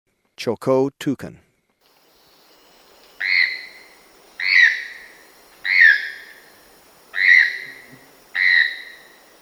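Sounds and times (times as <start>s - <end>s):
faint hiss: 1.8s - 9.4s
Choco toucan croaking, downward-slurred yelps: 2.9s - 9.4s.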